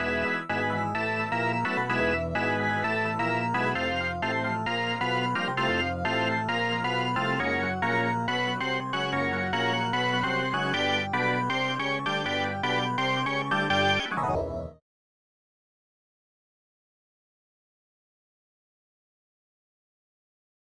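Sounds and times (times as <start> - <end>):
organ: 0.0 - 14.8.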